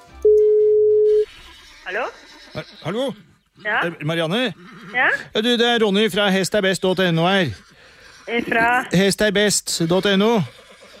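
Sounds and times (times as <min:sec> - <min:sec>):
telephone call ringing tone: 0:00.0 - 0:01.3
speech: 0:01.9 - 0:07.7, 0:08.3 - 0:10.9.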